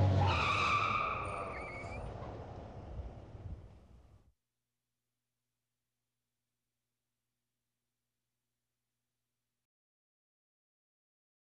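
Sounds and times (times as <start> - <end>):
car brakes screeching: 0.2 - 2.5.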